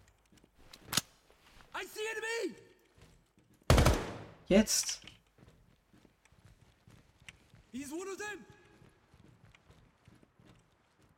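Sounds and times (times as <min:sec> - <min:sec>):
speech: 0:01.9 - 0:02.7, 0:04.5 - 0:05.1
gunfire in a tactical shooter video game: 0:03.7 - 0:04.4.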